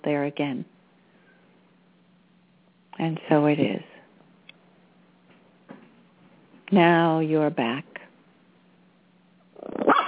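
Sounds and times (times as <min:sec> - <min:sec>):
speech: 0:00.0 - 0:00.8, 0:03.0 - 0:03.9, 0:06.7 - 0:08.0
faint low hum: 0:00.0 - 0:10.0
pup barking loudly protecting his house: 0:09.8 - 0:10.0.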